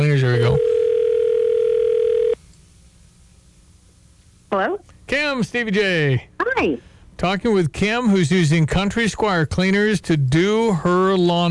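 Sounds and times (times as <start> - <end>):
steady mid-pitched telephone tone while a call is placed: 0.4 - 2.4
speech: 4.5 - 11.4.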